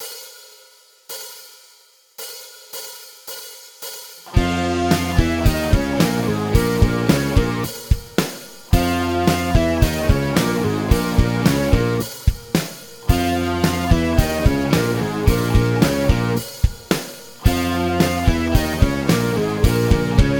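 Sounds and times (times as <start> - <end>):
band guitar riff: 4.3 - 20.3.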